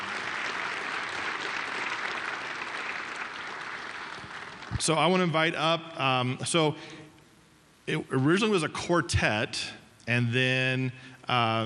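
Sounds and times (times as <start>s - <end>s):
audience applause for educators: 0.0s - 4.8s
speech: 4.8s - 7.0s, 7.9s - 11.6s.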